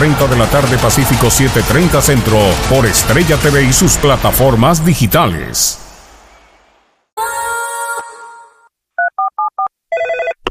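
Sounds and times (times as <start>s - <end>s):
speech: 0.0s - 5.8s
telephone dial tone: 9.0s - 10.4s.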